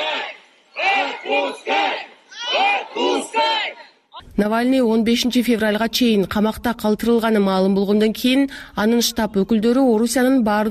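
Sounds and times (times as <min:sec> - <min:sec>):
crowd of about 200 supporters chanting in unison outside a police station: 0:00.0 - 0:04.2
speech: 0:04.4 - 0:10.6.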